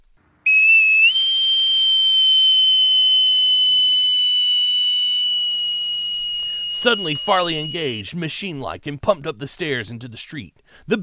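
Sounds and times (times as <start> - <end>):
shrill whistle: 0.5 - 8.1
speech: 6.8 - 11.0.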